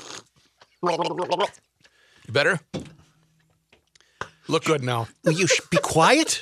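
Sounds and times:
person sipping and swallowing water: 0.0 - 0.8
speech: 0.8 - 1.7, 2.3 - 2.9, 4.5 - 6.4.

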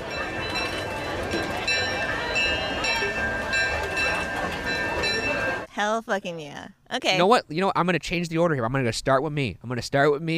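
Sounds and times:
railroad crossing bells clanging: 0.0 - 5.7
rumble of passing train: 0.0 - 5.7
speech: 5.8 - 10.3.

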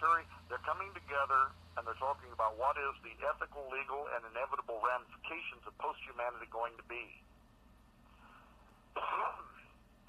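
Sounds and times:
speech: 0.0 - 7.3, 9.0 - 9.5
raspy cough or throat clear from a cold: 9.0 - 9.7.

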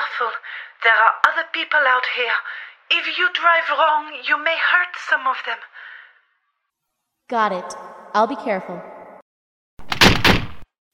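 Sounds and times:
speech: 0.2 - 5.8, 7.3 - 8.9
garage doors rattling open after button press: 9.8 - 10.6.

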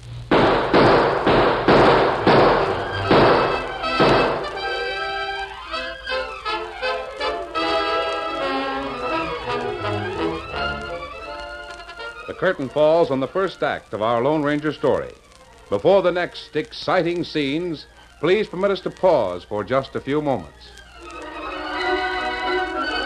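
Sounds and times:
loud gunshots fired into a door: 0.3 - 4.8
dramatic orchestral music: 1.8 - 13.1, 21.0 - 23.0
speech: 12.4 - 20.8.

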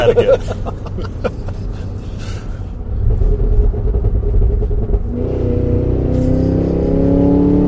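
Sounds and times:
laughter: 0.0 - 1.9
supercharged Cadillac Escalade V engine accelerating at full throttle: 2.9 - 7.6.

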